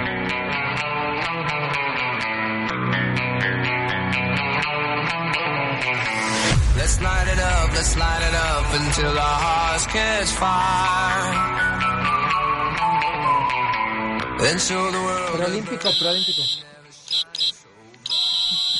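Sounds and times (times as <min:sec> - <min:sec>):
dense music: 0:00.0 - 0:18.7
speech: 0:06.9 - 0:12.2, 0:14.4 - 0:16.7
loud shrill cricket chirping: 0:16.2 - 0:18.7.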